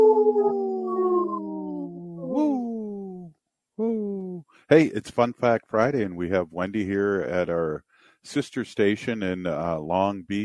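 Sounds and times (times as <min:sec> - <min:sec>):
person imitating a wolf howl: 0:00.0 - 0:04.4
speech: 0:04.7 - 0:10.4.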